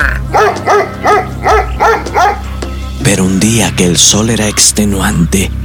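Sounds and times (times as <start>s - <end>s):
hound barking loudly: 0.2s - 2.5s
speech: 3.8s - 5.6s.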